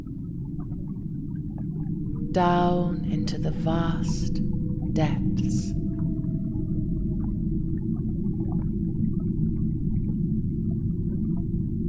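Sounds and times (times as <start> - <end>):
deep steady underwater rumble: 0.0 - 11.8
whale song and calls: 0.0 - 11.8
faint tonal whale moans: 2.2 - 7.7
speech: 2.3 - 5.8.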